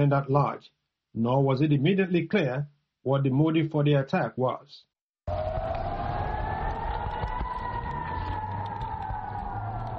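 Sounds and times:
speech: 0.0 - 5.6
air raid siren wailing: 5.3 - 9.9.

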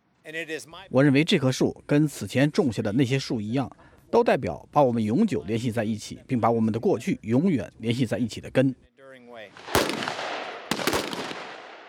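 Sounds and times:
speech: 0.2 - 9.8
rifle shots at a live-fire marksmanship competition: 9.5 - 11.8.

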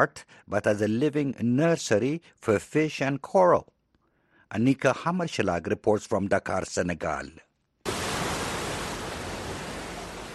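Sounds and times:
speech: 0.0 - 3.7, 4.5 - 7.5
waves lapping against a beach outside a scuba diving center in Dakar Senegal: 7.9 - 10.3.

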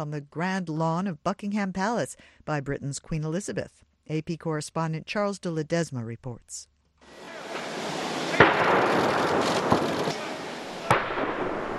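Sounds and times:
speech: 0.0 - 7.4
steady noise: 0.0 - 11.7
ceremonial gun salute fired during a state welcome at Buckingham Palace: 7.1 - 11.7.

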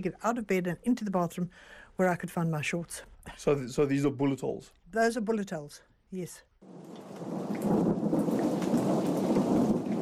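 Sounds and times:
speech: 0.0 - 7.1
heavy rain pouring in a thunderstorm: 6.6 - 10.0
deep low rumble of thunder: 6.7 - 10.0.

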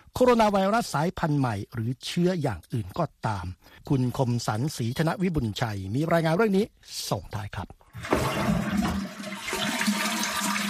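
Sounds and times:
speech: 0.2 - 8.6
toilet flushing: 7.9 - 10.6.

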